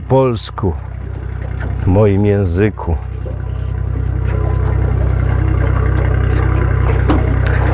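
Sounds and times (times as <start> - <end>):
small aluminium boat engine idling: 0.0 - 7.7
speech: 0.1 - 0.9, 1.8 - 3.1
light knocks and rattles of handling around the hull: 0.5 - 7.7
water splashing around the hull: 0.8 - 2.2, 3.0 - 7.7.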